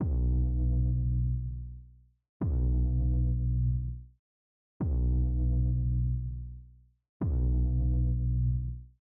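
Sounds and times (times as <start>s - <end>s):
bass riff: 0.0s - 1.7s, 2.4s - 4.0s, 4.8s - 6.4s, 7.2s - 8.8s.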